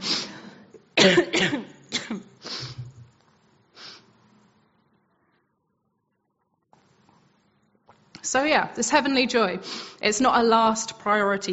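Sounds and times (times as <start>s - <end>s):
speech: 1.0s - 2.2s, 8.3s - 11.5s
person coughing harshly: 1.0s - 3.0s.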